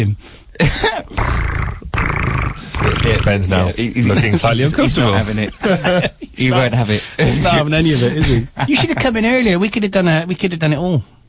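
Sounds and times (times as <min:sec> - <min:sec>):
speech: 0:00.0 - 0:01.7, 0:02.8 - 0:11.2
man growling in imitation of a dog: 0:01.0 - 0:03.6
laughter: 0:04.0 - 0:09.2.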